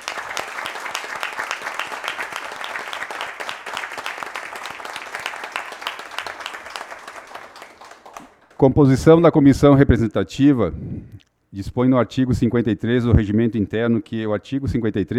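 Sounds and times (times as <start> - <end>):
applause from a room full of people: 0.0 - 8.7
speech: 8.6 - 15.1.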